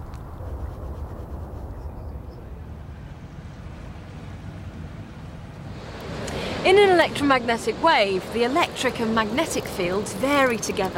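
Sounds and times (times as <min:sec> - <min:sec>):
water waves churning with a deep low rumble: 0:02.5 - 0:10.9
speech: 0:06.6 - 0:10.9.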